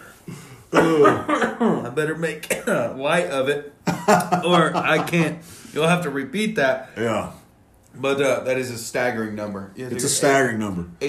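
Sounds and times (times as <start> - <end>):
person coughing with a rough throat rumble: 0.3 - 1.9
speech: 0.7 - 11.0
laughter: 3.9 - 5.4.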